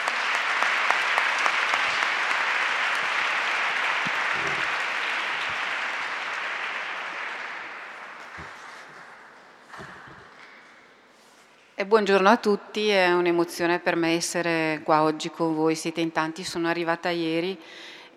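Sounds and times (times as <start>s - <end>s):
sustained applause from a sizable audience: 0.0s - 10.4s
speech: 11.8s - 17.9s.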